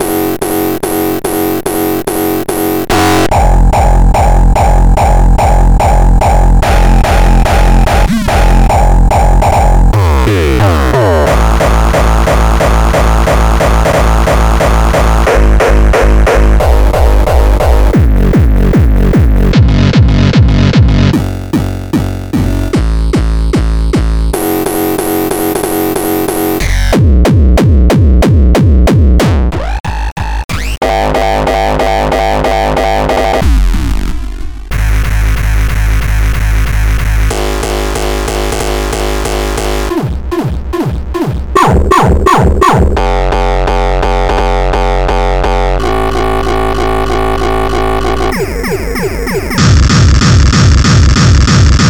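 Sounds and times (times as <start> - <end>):
Nu Hardstyle and Hardcore kick drums: 0.0 - 51.8.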